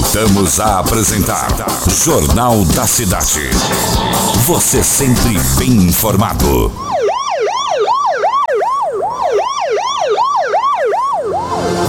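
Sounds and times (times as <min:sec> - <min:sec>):
speech: 0:00.2 - 0:07.0
police siren wailing: 0:03.4 - 0:11.8.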